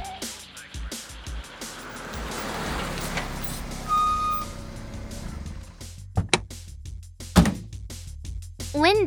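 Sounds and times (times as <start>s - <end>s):
car engine rumbling: 1.0s - 6.6s, 7.3s - 7.8s
high electronic beeps: 1.8s - 4.7s
sharp thunks: 5.0s - 6.5s, 7.4s - 7.8s.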